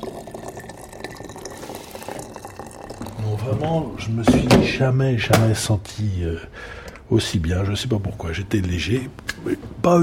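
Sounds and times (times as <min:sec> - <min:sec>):
water pouring into a herbal decoction: 0:00.0 - 0:04.0
speech: 0:03.3 - 0:10.0.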